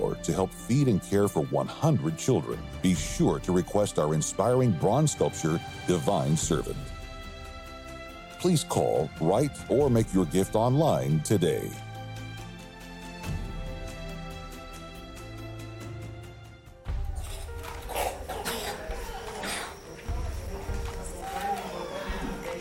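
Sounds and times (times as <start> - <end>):
soft music: 0.0 - 22.5
speech: 0.2 - 6.9, 8.4 - 11.9
children's harsh deep chest coughing: 17.2 - 20.0.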